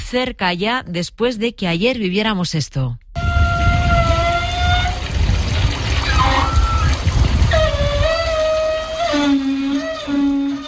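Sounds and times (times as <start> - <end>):
speech: 0.1 - 3.0
wavering squeals and whines like straining pipes or a valve: 3.2 - 5.1, 5.9 - 10.6
outdoor beach shower running water: 3.4 - 10.6.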